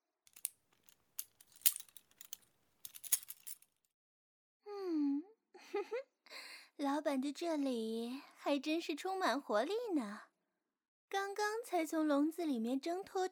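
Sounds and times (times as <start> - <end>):
keys jangling and clinking: 0.3 - 3.6
speech: 6.8 - 10.3, 11.1 - 13.3.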